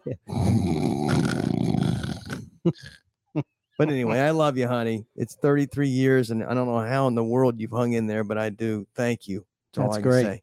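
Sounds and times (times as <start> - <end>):
speech: 0.1 - 1.0, 2.6 - 10.4
person imitating a snore with their voice: 0.1 - 3.0.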